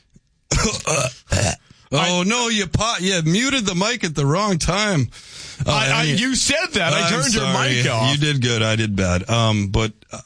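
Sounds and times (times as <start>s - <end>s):
belch: 0.5s - 1.7s
speech: 0.6s - 10.2s.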